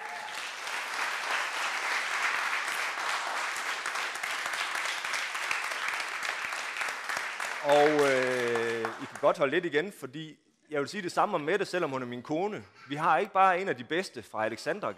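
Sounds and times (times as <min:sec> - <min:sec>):
sizable audience applauding a gospel pianist: 0:00.0 - 0:09.4
speech: 0:07.6 - 0:08.3, 0:09.2 - 0:14.9.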